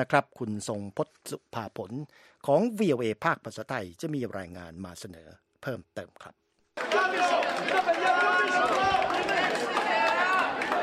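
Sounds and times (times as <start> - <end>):
speech: 0.0 - 9.8
crowd cheering at a polling station: 6.8 - 10.8.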